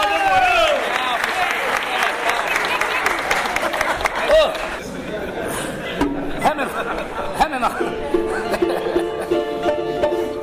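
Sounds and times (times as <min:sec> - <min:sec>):
cheers and excited voices: 0:00.0 - 0:04.8
audience applause: 0:00.0 - 0:04.9
laughter: 0:01.8 - 0:10.3.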